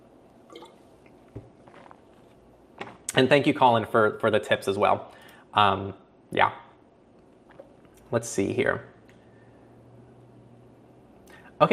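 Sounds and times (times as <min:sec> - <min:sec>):
water dripping: 0:00.4 - 0:01.2
person sipping water: 0:00.5 - 0:03.1
speech: 0:03.2 - 0:06.6, 0:08.1 - 0:08.9, 0:11.6 - 0:11.7.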